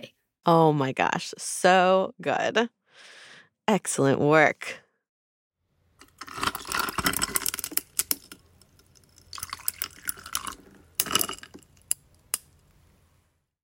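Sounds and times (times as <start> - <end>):
speech: 0.0 - 4.8
ice clinking in a glass: 6.0 - 12.5
water poured over ice in a glass: 6.2 - 8.0, 8.8 - 11.7
water dripping: 8.2 - 12.4.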